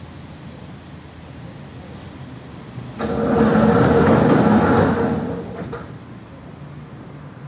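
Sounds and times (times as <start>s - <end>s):
parking gate rumbling open: 2.4s - 6.1s
car rolling in: 2.9s - 6.1s.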